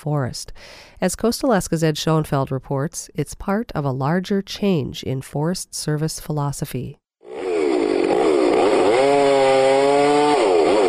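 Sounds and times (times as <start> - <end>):
speech: 0.0 - 7.0
chainsaw cutting timber during logging in the Tongass National Forest in Southeast Alaska: 7.2 - 10.8.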